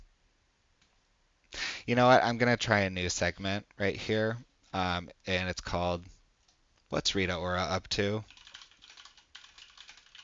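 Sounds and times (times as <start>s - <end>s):
speech: 1.9s - 6.2s, 6.9s - 8.4s
fingers typing on a computer keyboard: 8.2s - 10.2s.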